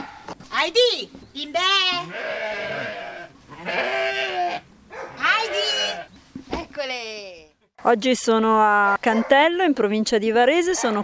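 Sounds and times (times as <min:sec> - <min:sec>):
speech: 0:00.6 - 0:03.0, 0:07.8 - 0:11.0
pet sheep bleating: 0:01.8 - 0:06.1.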